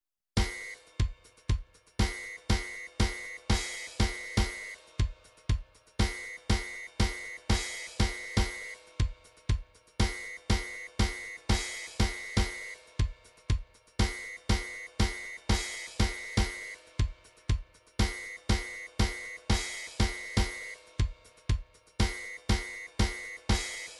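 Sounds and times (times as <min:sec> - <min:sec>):
MIDI drum patterns: 0:00.4 - 0:23.9.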